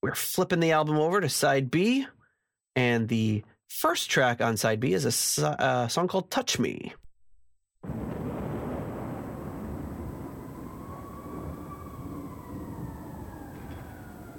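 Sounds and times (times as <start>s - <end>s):
speech: 0.0s - 2.2s, 2.8s - 7.0s
rain hissing steadily on a stormy city night: 7.9s - 14.3s
faint police sirens wailing through the downpour: 9.0s - 14.3s.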